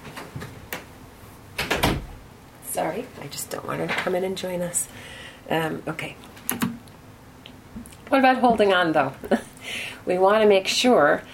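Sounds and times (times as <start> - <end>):
door swinging shut with bumps, clicks, thud and latch: 1.6 - 2.2
speech: 2.8 - 6.7, 8.1 - 11.3.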